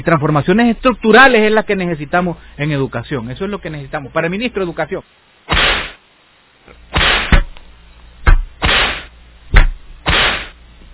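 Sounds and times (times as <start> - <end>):
speech: 0.0 - 5.6
whip swinging and cracking: 5.5 - 6.0, 7.0 - 7.5, 8.3 - 10.6.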